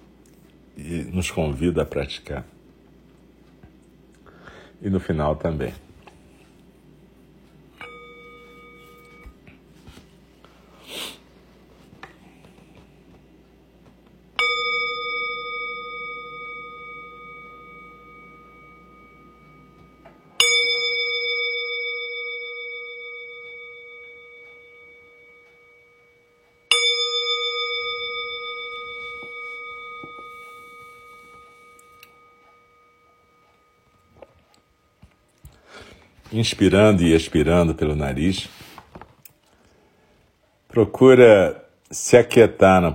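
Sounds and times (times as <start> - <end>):
low steady background: 0.0 - 42.9
speech: 0.8 - 2.6, 4.8 - 5.9, 36.4 - 38.6, 40.8 - 42.9
meditation bell ringing to open zazen practice: 7.5 - 10.0, 14.3 - 38.4.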